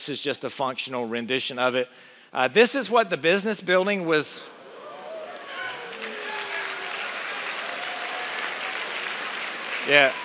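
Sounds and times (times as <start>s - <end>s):
speech: 0.0s - 4.6s, 9.8s - 10.2s
audience cheers and whoops: 4.7s - 10.2s
audience applause at a presentation: 4.8s - 10.2s.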